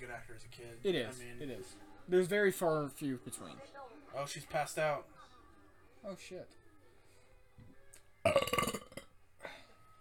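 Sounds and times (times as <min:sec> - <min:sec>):
speech: 0:00.0 - 0:05.3, 0:06.0 - 0:06.6
loud rough croaky burp: 0:08.2 - 0:09.2.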